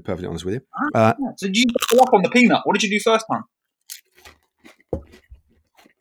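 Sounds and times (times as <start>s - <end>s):
speech: 0.0s - 3.6s
crunching a Pringles crisp: 1.7s - 2.1s, 3.9s - 4.8s
softer chewing crunches: 1.7s - 2.1s, 3.9s - 6.0s.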